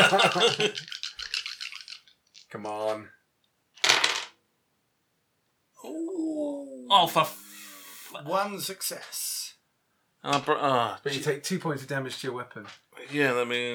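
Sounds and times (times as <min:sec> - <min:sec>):
laughter: 0:00.0 - 0:02.0
speech: 0:00.1 - 0:01.0, 0:02.5 - 0:03.2, 0:05.8 - 0:07.4, 0:08.1 - 0:09.4, 0:10.2 - 0:13.7
dice rattling as they are shaken: 0:00.7 - 0:03.0, 0:03.8 - 0:04.4, 0:12.6 - 0:12.8
person muttering: 0:05.8 - 0:08.0.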